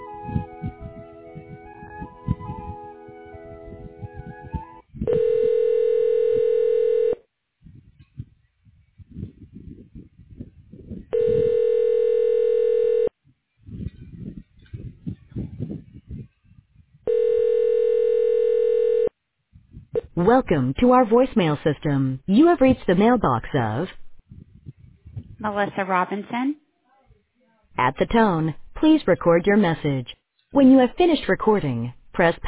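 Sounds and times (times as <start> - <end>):
melodic ringback music on a telephone call being transferred: 0.0 - 4.8
long steady buzzy rings on a telephone call being transferred: 5.1 - 7.2, 11.1 - 13.1, 17.1 - 19.1
speech: 20.2 - 24.0, 25.4 - 26.6, 27.8 - 32.4.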